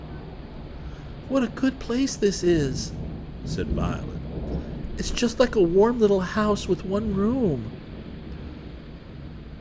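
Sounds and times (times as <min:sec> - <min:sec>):
deep rolling thunder rumbling: 0:00.0 - 0:09.5
heavy rain: 0:00.0 - 0:09.5
speech: 0:01.3 - 0:07.8.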